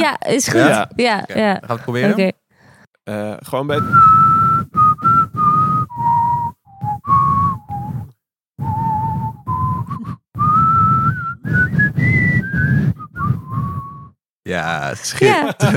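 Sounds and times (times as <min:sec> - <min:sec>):
speech: 0:00.0 - 0:02.4, 0:03.1 - 0:04.8, 0:14.5 - 0:15.7
person whistling a familiar rock anthem melody: 0:03.8 - 0:14.2
laughter: 0:14.8 - 0:15.7.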